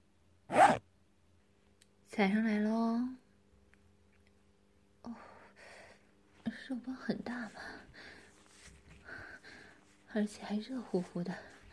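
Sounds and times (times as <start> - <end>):
zipper being pulled open: 0.5 - 0.8
speech: 2.2 - 3.2, 6.7 - 8.0, 10.1 - 11.6.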